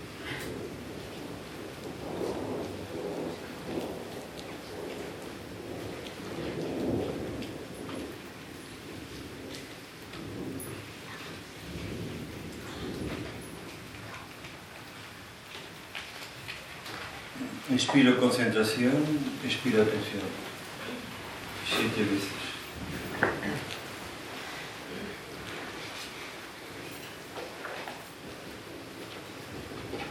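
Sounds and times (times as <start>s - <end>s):
low thunder rumbles in a summer thunderstorm: 0.0s - 30.1s
steady rain in a summer thunderstorm: 0.0s - 30.1s
speech: 17.8s - 20.5s, 22.0s - 22.4s.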